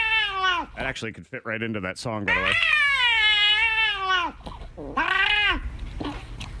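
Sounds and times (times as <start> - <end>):
angry cat yowling over a taken treat: 0.0 - 0.7, 2.3 - 5.7
speech: 0.8 - 2.9, 4.8 - 5.6.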